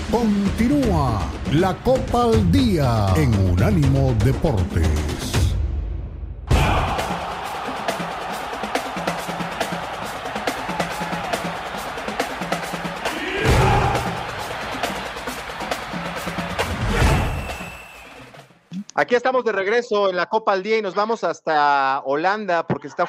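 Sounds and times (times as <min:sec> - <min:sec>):
speech: 0:00.2 - 0:05.4, 0:19.1 - 0:23.0
large stadium crowd roaring and shouting: 0:06.5 - 0:18.5.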